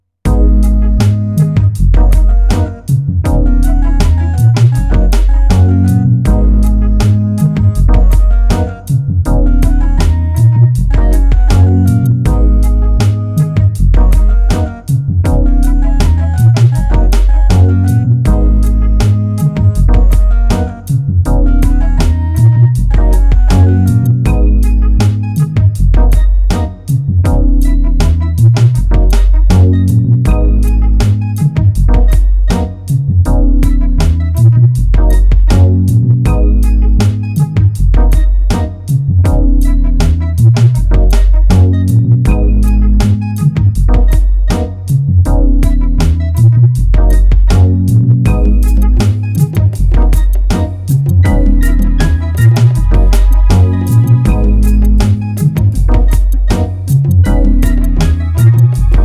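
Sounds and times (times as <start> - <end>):
downtempo blues music on a QY100 sequencer: 0.3 - 59.0.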